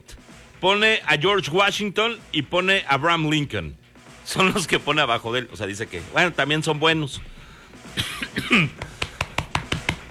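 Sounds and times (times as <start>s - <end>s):
speech: 0.6s - 7.4s, 8.0s - 8.9s
person coughing: 8.0s - 8.8s.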